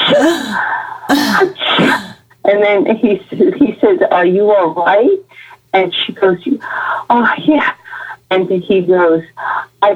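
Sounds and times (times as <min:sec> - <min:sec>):
voice acting out a dramatic sneeze: 0:00.0 - 0:02.2
speech: 0:00.1 - 0:09.9.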